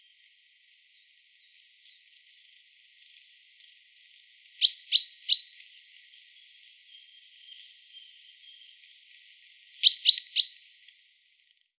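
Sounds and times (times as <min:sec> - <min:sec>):
great tit Parus major chipping calls: 0:04.6 - 0:05.4, 0:09.8 - 0:10.6.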